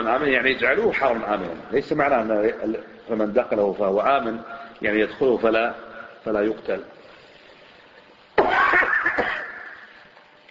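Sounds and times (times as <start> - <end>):
speech: 0.0 - 7.0
person coughing: 8.4 - 9.8.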